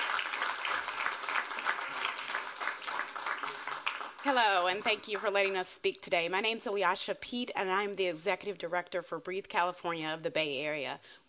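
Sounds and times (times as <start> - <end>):
crowd clapping: 0.0 - 5.6
speech: 4.2 - 11.2.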